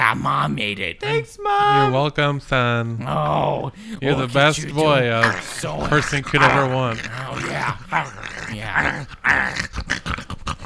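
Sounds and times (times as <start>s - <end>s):
speech: 0.1s - 10.2s
dog letting out low growls and whiny grumbles: 3.0s - 10.6s.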